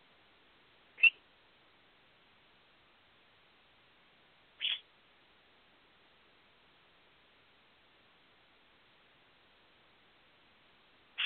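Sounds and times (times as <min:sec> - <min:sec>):
pet bird calling for attention: 0:01.0 - 0:01.2, 0:04.6 - 0:04.9.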